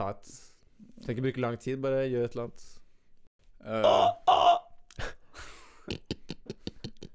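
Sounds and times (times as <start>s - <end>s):
speech: 0.0s - 0.4s, 1.0s - 2.8s, 3.6s - 5.1s
person imitating pig oinking grunts: 3.7s - 4.7s.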